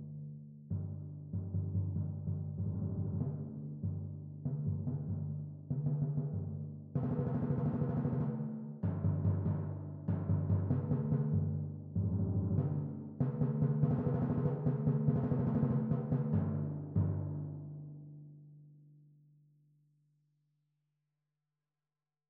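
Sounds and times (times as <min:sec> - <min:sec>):
timpani set: 0:00.7 - 0:17.8.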